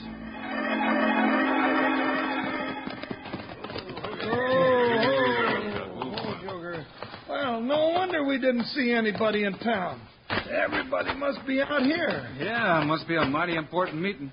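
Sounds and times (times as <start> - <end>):
sustained musical tone: 0.0 - 4.4
several horses' hooves clopping and stamping to a halt: 1.8 - 14.3
speech: 8.4 - 14.3.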